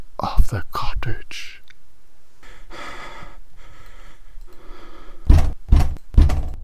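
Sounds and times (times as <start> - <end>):
faint hum: 0.0 - 6.6
speech: 0.2 - 1.6
firm knocks on a wooden cottage door: 5.3 - 6.6.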